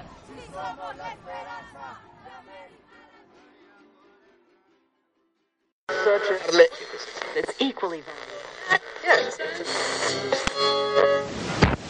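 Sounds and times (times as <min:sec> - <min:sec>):
many voices chanting together at a protest march: 0:00.0 - 0:04.0
loud burst of crowd noise and shouting: 0:00.0 - 0:04.6
speech: 0:00.4 - 0:03.0, 0:05.9 - 0:11.4.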